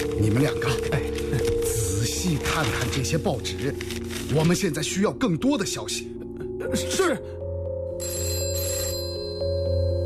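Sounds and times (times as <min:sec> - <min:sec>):
speech: 0:00.2 - 0:01.4, 0:02.2 - 0:07.3
telephone bell ringing with a metallic trill: 0:08.0 - 0:10.0.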